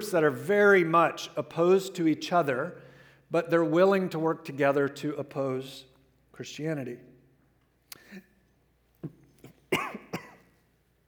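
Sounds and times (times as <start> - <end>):
speech: 0.1 - 7.1
stifled coughs: 9.0 - 10.6.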